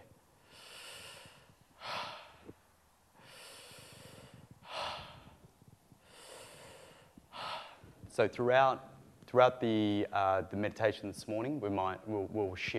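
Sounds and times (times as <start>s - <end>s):
slow deep breathing into the upper chest during a guided meditation: 0.3s - 8.2s
speech: 8.2s - 12.7s.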